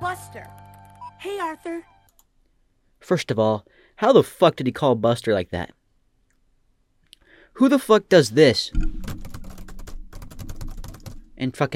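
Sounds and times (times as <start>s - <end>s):
speech: 0.1s - 1.9s, 3.0s - 5.8s, 7.6s - 9.2s, 11.4s - 11.7s
typing on a computer keyboard: 9.0s - 11.2s.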